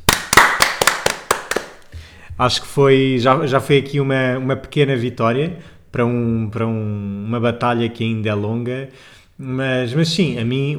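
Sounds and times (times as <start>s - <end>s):
hand clapping applause: 0.0s - 2.1s
speech: 2.4s - 10.7s.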